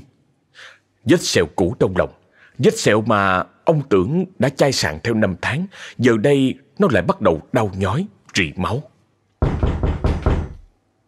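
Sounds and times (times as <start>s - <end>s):
speech: 1.0s - 8.9s
loud hollow knocking on a door: 9.4s - 10.7s.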